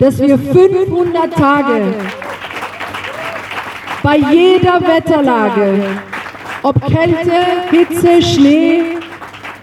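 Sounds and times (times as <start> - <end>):
speech: 0.0 - 2.4, 4.0 - 9.0
crowd applauding at vigil: 1.3 - 6.7, 7.3 - 9.6
faint voices and cheers: 1.8 - 3.6.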